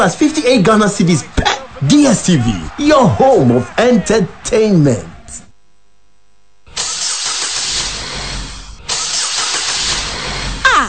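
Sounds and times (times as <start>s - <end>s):
speech: 0.0s - 5.1s
car engine turning over: 6.8s - 10.7s.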